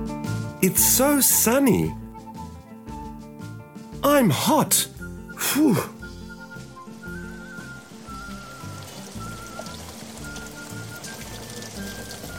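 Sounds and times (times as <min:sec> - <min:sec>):
speech: 0:00.6 - 0:02.0, 0:04.0 - 0:05.9
faint thin whistling tone: 0:06.0 - 0:12.3
steady rain pattering: 0:06.9 - 0:12.3.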